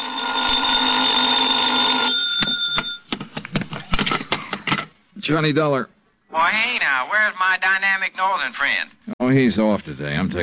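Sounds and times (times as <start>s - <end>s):
hotel telephone bell ringing: 0.0s - 3.1s
speech: 5.3s - 10.4s.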